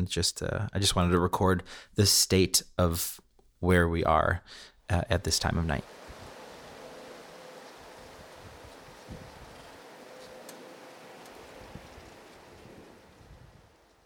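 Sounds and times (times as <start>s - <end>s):
speech: 0.0s - 6.0s
faint wind outside a home at night: 5.7s - 14.0s
light rustles and ticks: 7.8s - 14.0s.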